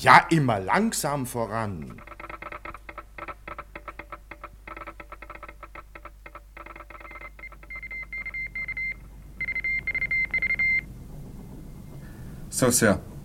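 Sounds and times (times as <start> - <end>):
speech: 0.0 - 2.1, 12.6 - 13.1
radio telegraph beeps sending a message: 4.7 - 10.9.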